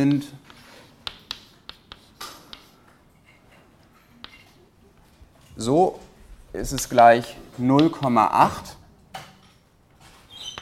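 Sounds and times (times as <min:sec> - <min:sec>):
speech: 0:00.0 - 0:00.4, 0:05.6 - 0:08.8
writing on a board during a chemistry lecture: 0:00.0 - 0:05.1.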